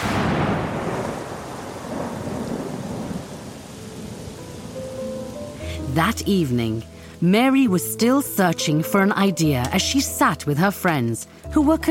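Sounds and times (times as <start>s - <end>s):
rumble of thunder: 0.0s - 4.6s
rain hissing: 0.0s - 7.5s
speech: 6.0s - 11.8s.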